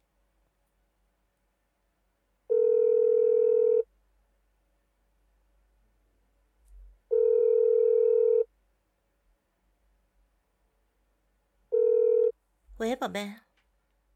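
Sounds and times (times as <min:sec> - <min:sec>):
phone ringback tone while calling back: 0:02.5 - 0:03.9, 0:07.1 - 0:08.5, 0:11.7 - 0:12.3
speech: 0:12.8 - 0:13.5.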